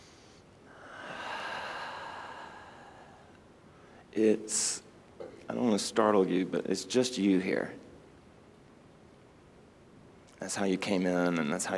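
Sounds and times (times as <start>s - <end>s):
big breath in: 0.0s - 4.1s
speech: 4.2s - 4.8s, 5.5s - 7.8s, 10.4s - 11.7s.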